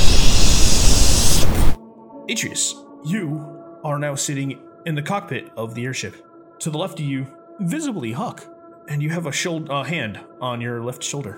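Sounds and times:
loud crackling static hiss: 0:00.0 - 0:01.8
speech: 0:02.3 - 0:11.3.

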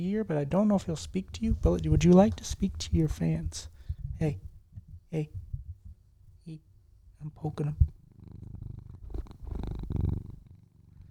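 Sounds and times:
speech: 0:00.0 - 0:04.5, 0:05.1 - 0:05.4, 0:06.5 - 0:08.0
cat purring: 0:00.0 - 0:11.0.

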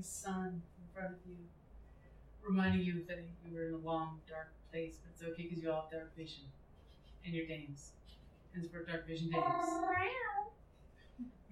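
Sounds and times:
speech: 0:00.0 - 0:01.6, 0:02.4 - 0:06.6, 0:07.2 - 0:10.4, 0:11.2 - 0:11.5
faint low murmur: 0:00.0 - 0:11.5
person imitating a cat meowing: 0:09.3 - 0:10.5.

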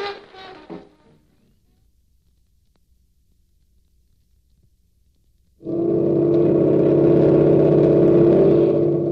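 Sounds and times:
navy boat engine arriving at mooring: 0:05.7 - 0:09.1.

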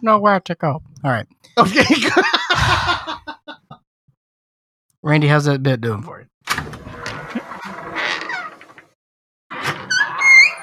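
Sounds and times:
speech: 0:00.0 - 0:03.4, 0:05.0 - 0:06.9
laughter: 0:01.6 - 0:03.8
wooden door creaking and groaning as it is shut: 0:06.5 - 0:10.6.

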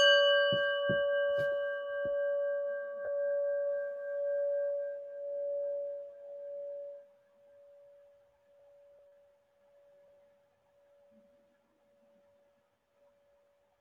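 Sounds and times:
soft knocks: 0:00.0 - 0:02.4
meditation bell ringing: 0:00.0 - 0:10.4.

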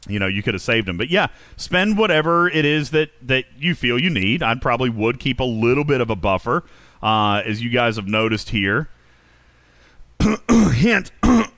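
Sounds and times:
speech: 0:00.1 - 0:09.0, 0:10.2 - 0:11.5
person clearing throat: 0:10.2 - 0:11.5.

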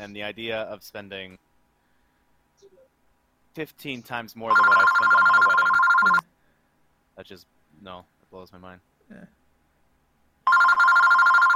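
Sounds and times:
speech: 0:00.1 - 0:01.5, 0:03.6 - 0:06.3, 0:07.2 - 0:09.4
telephone bell ringing: 0:04.5 - 0:06.2, 0:10.5 - 0:11.5.

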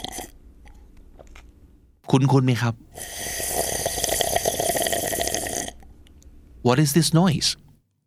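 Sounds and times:
slurping through a drinking straw: 0:00.0 - 0:00.9, 0:02.9 - 0:05.9
speech: 0:02.1 - 0:03.5, 0:06.6 - 0:07.6.

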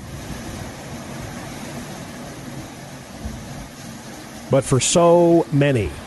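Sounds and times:
ocean surf waves washing continuously: 0:00.0 - 0:06.0
speech: 0:04.5 - 0:06.0.

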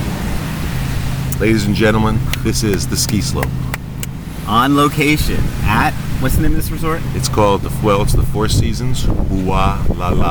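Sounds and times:
Pacific Ocean waves at a resort in Hawaii: 0:00.0 - 0:06.2
speech: 0:01.4 - 0:03.8, 0:04.5 - 0:10.2.

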